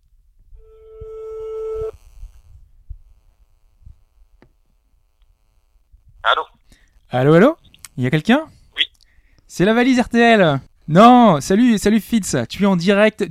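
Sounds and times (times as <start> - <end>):
telephone ringing tone: 0.6 - 2.0
speech: 7.1 - 8.6, 9.5 - 13.2.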